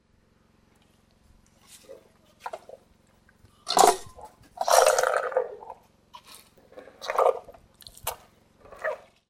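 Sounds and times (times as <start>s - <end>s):
eating cucumber: 1.6s - 9.2s.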